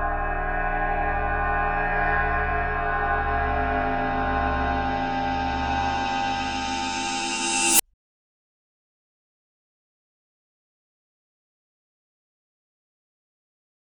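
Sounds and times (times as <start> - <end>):
cymbal recorded with a swinging microphone: 0.2 - 7.8.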